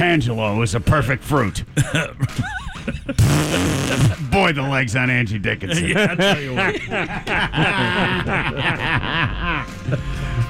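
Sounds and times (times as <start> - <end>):
speech: 0.0 - 2.6, 3.4 - 10.3
laughter: 1.8 - 4.4, 5.6 - 10.4
fart sound effect: 3.2 - 4.3.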